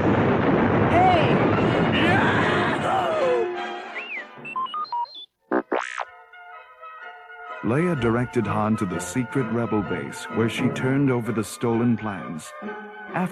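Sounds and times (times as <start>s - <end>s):
dense roaring rumble of fighter explosions: 0.0s - 3.4s
electronic beeps: 4.0s - 6.1s
whistling laser cannon zaps: 5.5s - 6.1s
speech: 7.7s - 13.3s.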